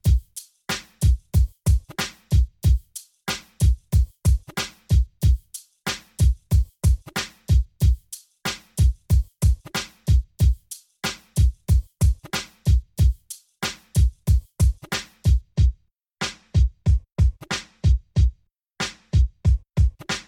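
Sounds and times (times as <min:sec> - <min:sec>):
drum loop: 0:00.0 - 0:20.2.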